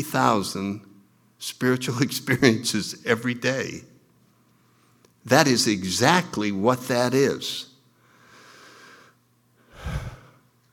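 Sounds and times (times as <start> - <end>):
speech: 0.0 - 3.9, 5.2 - 7.7
deep breath in and out: 8.0 - 10.5.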